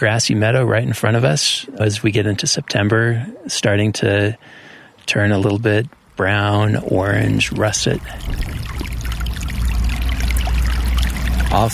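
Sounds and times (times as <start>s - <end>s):
speech: 0.0s - 8.9s, 11.5s - 11.7s
small snowmelt-fed brook babbling through meadow: 5.9s - 11.7s.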